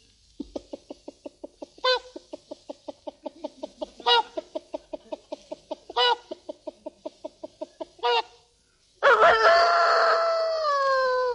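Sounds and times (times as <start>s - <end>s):
performer imitating chicken clucks and squawks: 0.4s - 8.3s
performer imitating a rooster crow: 9.0s - 11.3s.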